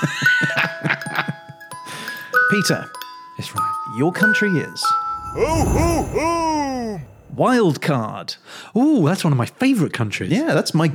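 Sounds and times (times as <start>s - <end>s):
bright Christmas bells chiming a quick rhythmic jingle: 0.0s - 7.5s
speech: 2.5s - 10.9s.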